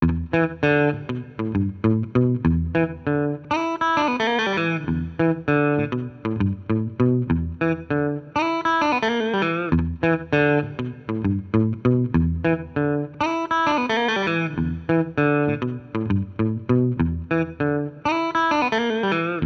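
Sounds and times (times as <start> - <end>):
guitar with effects: 0.0 - 19.4.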